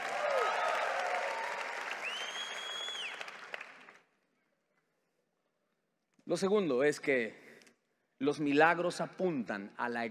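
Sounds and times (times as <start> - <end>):
scattered cheers and whoops of joy: 0.0 - 3.3
audience applauding: 0.0 - 4.0
speech: 6.3 - 7.4, 8.2 - 10.1.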